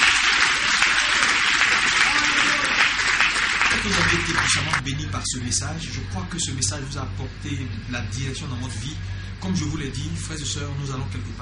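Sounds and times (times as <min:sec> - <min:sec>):
church congregation clapping: 0:00.0 - 0:04.8
speech: 0:03.8 - 0:11.4.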